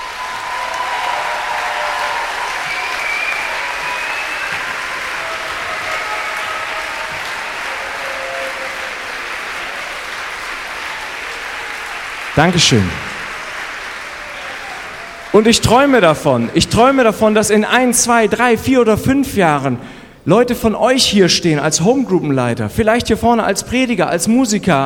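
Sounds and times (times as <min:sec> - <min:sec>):
sustained loud applause from a large audience: 0:00.0 - 0:18.2
speech: 0:12.4 - 0:13.0, 0:15.4 - 0:24.8.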